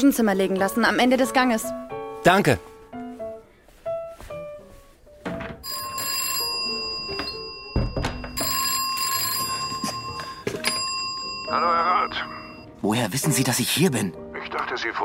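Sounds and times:
speech: 0.0 - 2.7, 11.5 - 15.0
telephone bell ringing: 5.6 - 12.8.

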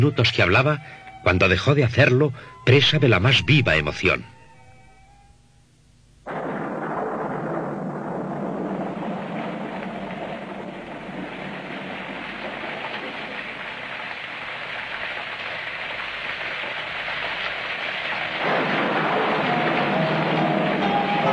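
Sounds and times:
speech: 0.0 - 4.3
heavy continuous rain beating on church windows: 6.4 - 21.3.

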